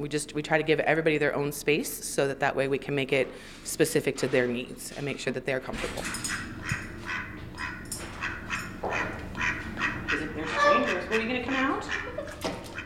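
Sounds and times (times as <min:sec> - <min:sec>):
speech: 0:00.0 - 0:06.5
mallard duck quacking: 0:06.6 - 0:12.8.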